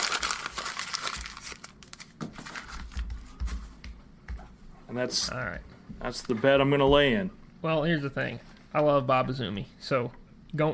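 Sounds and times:
page being ripped out of a book or pad: 0:00.0 - 0:02.6
speech: 0:04.9 - 0:10.7.

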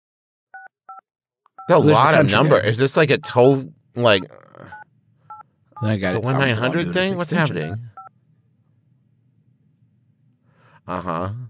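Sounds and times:
touch-tone telephone dialing beeps: 0:00.6 - 0:01.0, 0:04.2 - 0:05.9
speech: 0:01.7 - 0:04.7, 0:05.8 - 0:07.9, 0:10.9 - 0:11.4.

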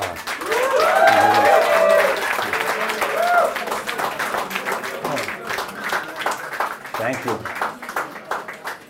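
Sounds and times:
audience at a talk applauding: 0:00.0 - 0:08.8
voices cheering: 0:00.4 - 0:05.4.

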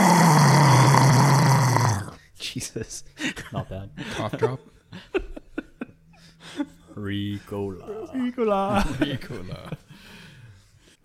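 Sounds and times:
voice imitating a fierce dragon roar: 0:00.0 - 0:02.2
speech: 0:02.6 - 0:05.3, 0:06.5 - 0:09.8
laughter: 0:03.2 - 0:10.0.

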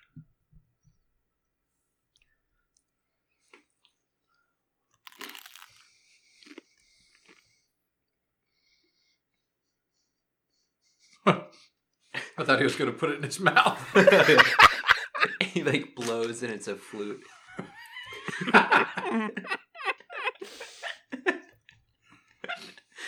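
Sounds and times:
person biting and chewing a crunchy sandwich: 0:02.2 - 0:07.7
laughter: 0:12.2 - 0:21.6, 0:22.4 - 0:23.0
speech: 0:12.4 - 0:14.8, 0:15.6 - 0:17.7, 0:18.4 - 0:19.6.

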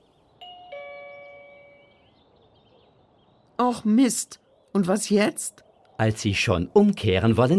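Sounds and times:
two-note doorbell ding-dong: 0:00.4 - 0:02.0
speech: 0:03.6 - 0:07.5.

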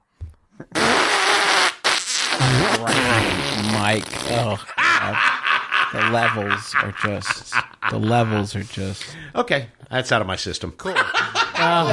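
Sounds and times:
fart noise: 0:00.6 - 0:04.6
speech: 0:03.8 - 0:11.9
laughter: 0:04.6 - 0:08.7, 0:10.9 - 0:11.9.

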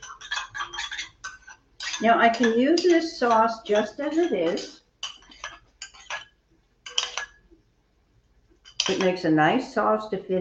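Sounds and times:
utensils clinking and scraping against a bowl mixing spicy sauce: 0:00.0 - 0:07.4, 0:08.6 - 0:09.2
speech: 0:02.0 - 0:04.8, 0:08.9 - 0:10.4.

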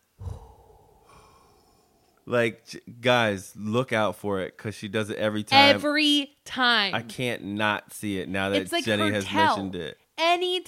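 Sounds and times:
long steady exhale through the lips: 0:00.0 - 0:02.2
voice imitating a sudden big gasp: 0:00.2 - 0:02.1
speech: 0:02.3 - 0:10.6.

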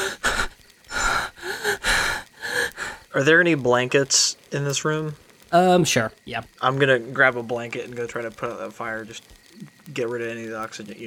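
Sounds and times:
person imitating heavy panting: 0:00.0 - 0:03.0
speech: 0:03.2 - 0:09.4, 0:10.0 - 0:11.0.

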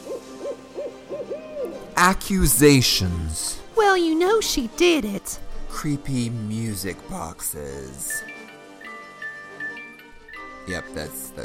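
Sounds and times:
barn owl hooting: 0:00.0 - 0:01.9
speech: 0:02.0 - 0:08.3, 0:10.6 - 0:11.4.

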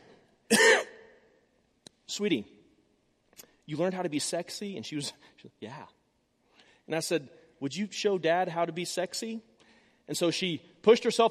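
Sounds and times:
harsh cough: 0:00.5 - 0:01.1
speech: 0:02.2 - 0:02.6, 0:03.4 - 0:06.0, 0:06.9 - 0:11.2.

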